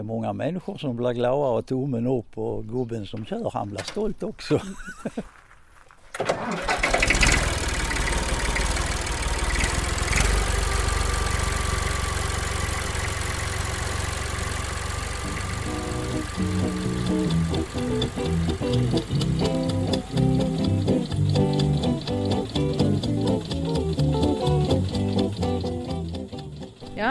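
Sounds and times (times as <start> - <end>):
speech: 0.0 - 5.4
laughter: 4.4 - 5.3
old tractor engine running: 6.2 - 27.0.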